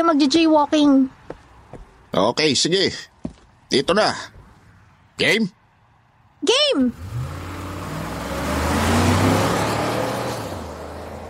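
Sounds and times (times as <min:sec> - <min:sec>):
speech: 0:00.0 - 0:01.2, 0:02.1 - 0:03.1, 0:03.7 - 0:04.3, 0:05.2 - 0:05.6, 0:06.4 - 0:07.1
many passing vehicles on a busy road: 0:00.0 - 0:02.2, 0:03.0 - 0:11.2
large truck roaring past on a busy road: 0:06.9 - 0:11.2.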